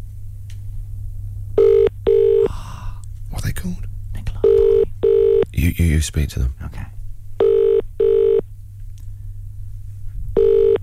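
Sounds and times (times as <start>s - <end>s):
low hum: 0.0s - 10.8s
ringback tone of an outgoing phone call: 1.6s - 2.5s, 4.4s - 5.5s, 7.4s - 8.4s, 10.4s - 10.8s
speech: 5.8s - 7.0s.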